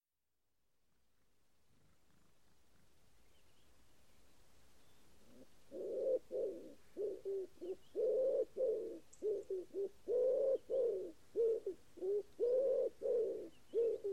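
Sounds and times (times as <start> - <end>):
common wood pigeon giving husky low coos: 5.2 - 14.1.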